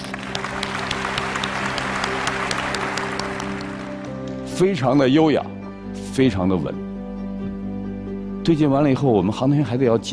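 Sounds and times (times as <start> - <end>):
large group applauding in a control hall: 0.0 - 4.4
speech: 4.6 - 6.8, 8.5 - 10.1.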